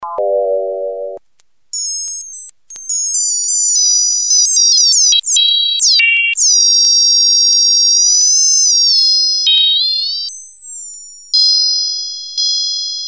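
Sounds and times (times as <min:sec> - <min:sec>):
synthesizer sine wave in sync mode: 0:00.0 - 0:11.5.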